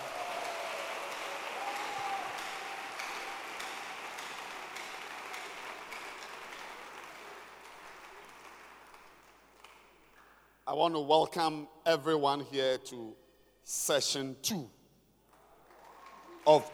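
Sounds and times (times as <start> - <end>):
large church audience clapping during a worship session: 0.0 - 10.5, 15.2 - 16.7
speech: 10.7 - 14.8, 16.5 - 16.7.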